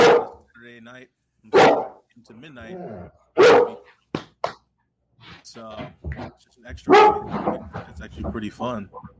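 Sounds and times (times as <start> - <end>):
dog barking: 0.0 - 0.4, 1.5 - 2.0, 3.4 - 3.9, 6.9 - 7.9
speech: 0.6 - 4.0, 5.2 - 9.1.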